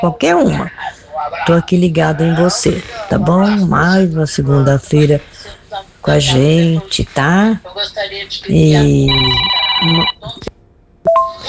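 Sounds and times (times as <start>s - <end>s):
speech: 0.0s - 0.8s, 1.5s - 10.5s, 11.1s - 11.4s
telephone ringing with electronic tone: 9.0s - 10.5s, 11.1s - 11.4s.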